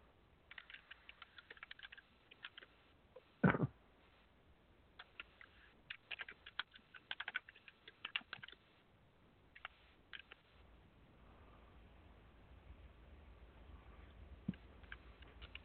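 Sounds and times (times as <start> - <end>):
typing on a computer keyboard: 0.5 - 2.8, 5.0 - 8.7, 9.6 - 10.5, 14.5 - 15.6.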